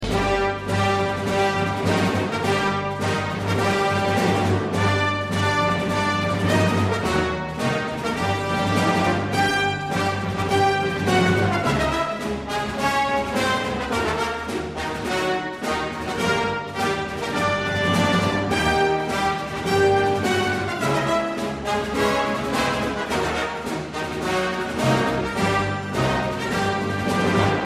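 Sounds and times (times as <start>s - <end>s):
short march music: 0.0s - 27.6s.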